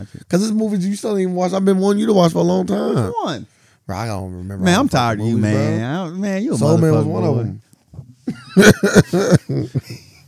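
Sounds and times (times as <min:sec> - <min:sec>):
speech: 0:00.0 - 0:07.6, 0:08.3 - 0:10.1
laughter: 0:08.3 - 0:10.2
dry hacking coughs: 0:08.6 - 0:09.7.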